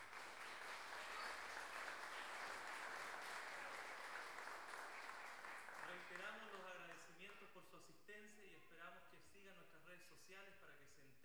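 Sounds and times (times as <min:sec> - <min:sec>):
audience applause at a payador counterpoint tournament: 0:00.0 - 0:06.6
speech: 0:06.1 - 0:11.2.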